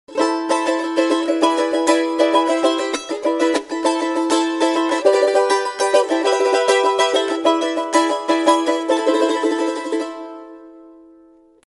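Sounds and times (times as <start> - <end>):
charango: 0.1 - 11.5.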